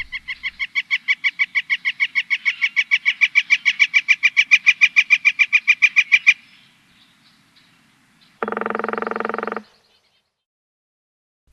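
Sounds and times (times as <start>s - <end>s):
northern flicker keck calls: 0.0s - 6.4s, 8.4s - 10.2s
northern flicker harsh buzzy call: 8.4s - 9.8s.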